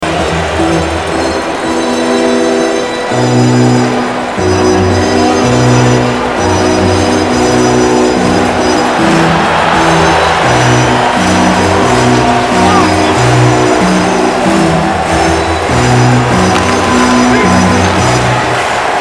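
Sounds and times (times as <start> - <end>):
organ melody: 0.0 - 18.9.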